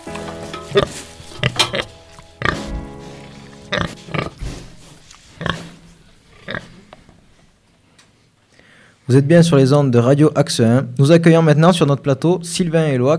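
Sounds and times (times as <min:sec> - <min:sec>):
farmyard noise: 0:00.0 - 0:07.1
pigs grunting and snorting: 0:00.6 - 0:06.9
speech: 0:00.7 - 0:01.1, 0:09.1 - 0:13.1.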